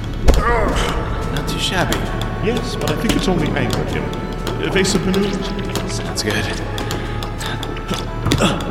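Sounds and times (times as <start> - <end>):
dodgeballs striking targets in a video game: 0.2 - 2.4
speech: 1.6 - 6.9, 7.9 - 8.6.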